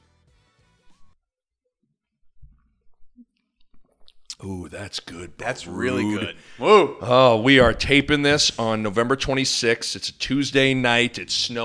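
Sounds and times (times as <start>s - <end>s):
sipping and swallowing wine from a glass: 2.2s - 4.8s
speech: 4.4s - 11.6s.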